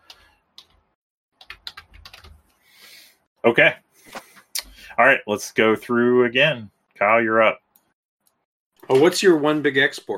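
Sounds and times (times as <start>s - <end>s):
typing on a computer keyboard: 0.1s - 0.8s, 1.4s - 2.5s
speech: 3.4s - 3.8s, 5.0s - 7.6s, 8.9s - 10.1s.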